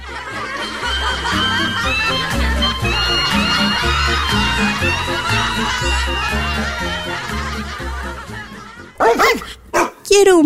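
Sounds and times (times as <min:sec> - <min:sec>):
laughter: 0:00.0 - 0:09.6
lively music: 0:00.0 - 0:10.4
dog barking: 0:09.0 - 0:10.1.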